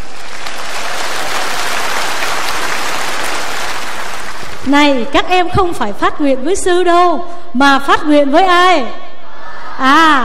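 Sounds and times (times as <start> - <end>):
crowd at a Buddhist retreat applauding: 0.0 - 4.7
speech: 4.7 - 9.0, 9.8 - 10.2.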